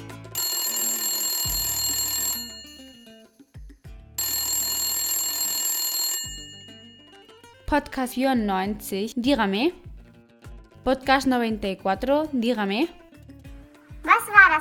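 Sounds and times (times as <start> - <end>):
telephone ringing in electronic bursts: 0.2 - 3.2, 4.2 - 7.5
speech: 7.7 - 9.9, 10.8 - 13.0.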